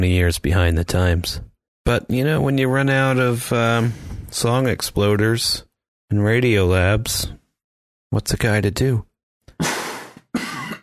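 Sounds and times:
speech: 0.0s - 7.4s, 8.1s - 10.4s
loud harsh raspy coughs: 9.5s - 10.8s.

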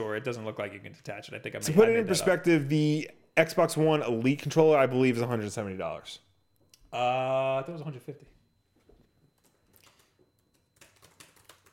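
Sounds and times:
speech: 0.2s - 6.3s, 6.9s - 8.3s
typing on a keyboard: 9.4s - 11.7s.

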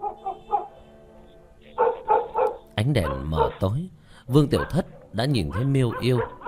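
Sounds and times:
large black dog barking fiercely: 0.0s - 0.8s, 1.8s - 3.7s, 4.4s - 6.4s
speech: 2.8s - 6.4s.

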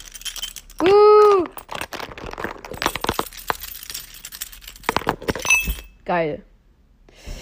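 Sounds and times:
bunch of keys being shaken: 0.0s - 5.9s
speech: 6.1s - 6.5s.

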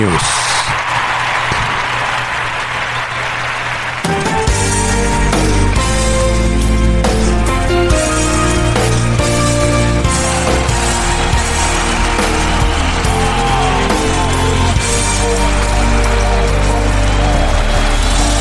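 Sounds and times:
concert audience applauding: 0.0s - 18.3s
band playing music: 4.3s - 18.3s.

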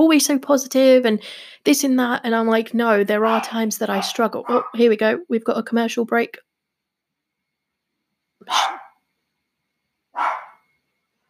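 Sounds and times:
speech: 0.0s - 6.5s, 8.4s - 8.8s
dog barking: 3.2s - 4.8s, 8.4s - 9.0s, 10.2s - 10.6s.

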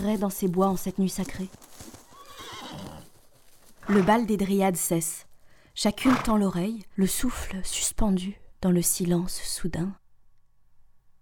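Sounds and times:
speech: 0.0s - 2.0s, 3.9s - 10.0s
horse hooves trotting in woods at night: 0.0s - 6.4s
horse whinnying in woods at night: 2.1s - 3.1s, 3.8s - 4.3s.

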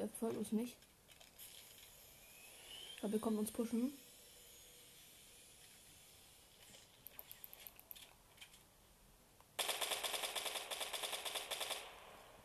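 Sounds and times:
speech: 0.0s - 0.9s, 3.0s - 4.0s
video game rapid automatic gunfire: 9.6s - 12.4s
video game single gunshots: 9.6s - 12.4s.

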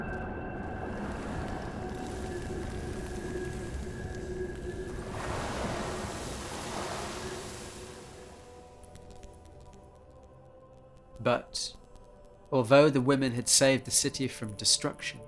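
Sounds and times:
ocean waves washing: 0.6s - 8.8s
speech: 11.2s - 11.8s, 12.5s - 15.2s.

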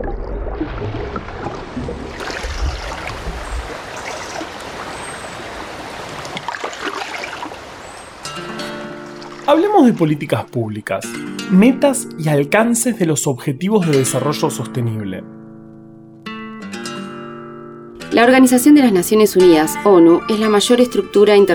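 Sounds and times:
flowing river water rushing: 0.5s - 10.1s
speech: 9.5s - 15.4s, 18.2s - 21.5s.

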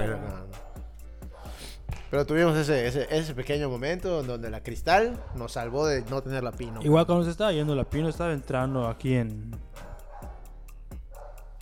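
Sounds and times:
speech: 2.1s - 9.9s
small dog yapping: 9.7s - 10.5s, 11.1s - 11.6s.

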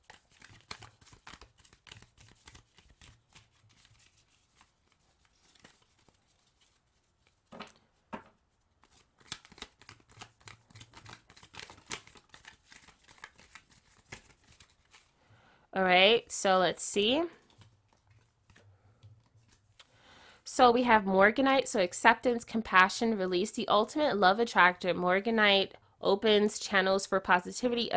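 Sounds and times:
deck of crystal gemstone cards being shuffled: 0.0s - 15.1s, 17.4s - 19.9s
speech: 15.8s - 17.4s, 20.6s - 27.9s.

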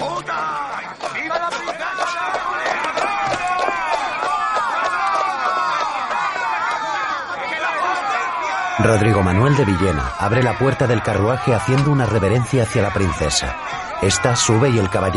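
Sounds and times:
crowd of onlookers chattering by a waiting carriage at a palace door: 0.0s - 15.1s
speech: 8.8s - 15.1s.

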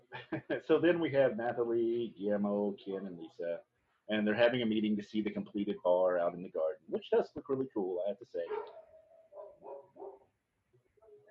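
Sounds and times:
faint noise: 0.0s - 11.2s
speech: 0.3s - 8.8s
dog barking: 8.5s - 10.3s.

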